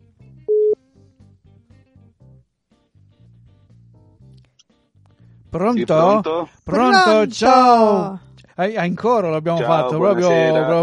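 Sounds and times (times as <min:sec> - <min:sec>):
telephone dialing tone on an outgoing call from a radio studio: 0:00.5 - 0:00.8
speech: 0:05.5 - 0:10.8.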